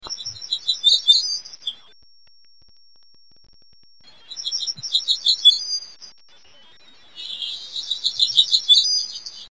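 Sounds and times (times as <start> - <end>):
Hermit warbler singing buzzy phrases in northwest California: 0.0 - 2.0, 4.0 - 9.4.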